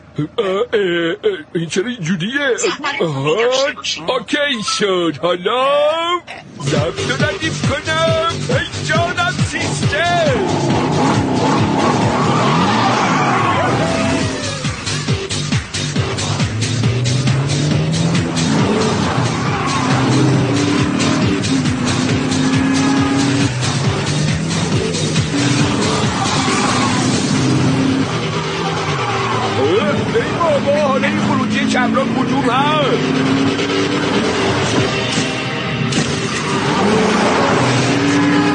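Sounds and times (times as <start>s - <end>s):
car engine roaring while speeding hard: 0.0s - 38.5s
speech: 0.2s - 11.6s, 30.2s - 34.3s
car tires skidding and squealing: 9.1s - 38.5s
voices shouting: 10.0s - 15.1s, 18.8s - 20.7s, 25.6s - 30.5s, 36.6s - 38.5s.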